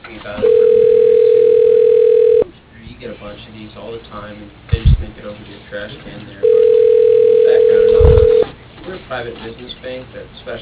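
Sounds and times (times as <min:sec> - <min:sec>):
speech: 0:00.2 - 0:00.6, 0:04.1 - 0:06.5, 0:09.1 - 0:10.6
steady mid-pitched tone of an automated telephone system dialing an extension: 0:00.4 - 0:02.5, 0:06.4 - 0:08.4.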